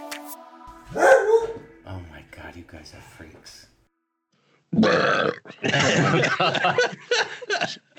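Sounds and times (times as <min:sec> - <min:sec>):
speech: 0:02.5 - 0:03.8, 0:04.7 - 0:07.1
person burping: 0:04.7 - 0:05.6
laughter: 0:05.6 - 0:07.9.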